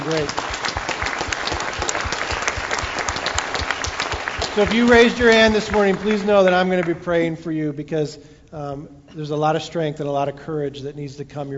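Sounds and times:
room full of people applauding: 0:00.0 - 0:07.0
speech: 0:00.1 - 0:00.5, 0:04.6 - 0:11.5.

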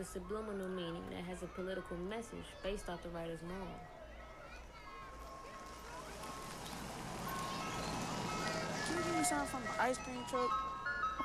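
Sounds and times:
speech: 0:00.0 - 0:04.0, 0:09.3 - 0:10.7
ice cream truck jingle: 0:04.8 - 0:11.2
steady street rumble: 0:05.4 - 0:11.2.

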